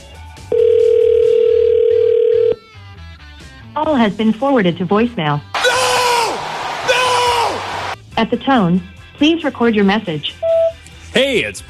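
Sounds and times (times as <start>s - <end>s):
quiet music bed with soft low pulse: 0.0s - 11.6s
loud steady telephone ringback tone: 0.5s - 2.6s
speech: 3.8s - 5.5s, 8.2s - 10.4s, 11.2s - 11.6s.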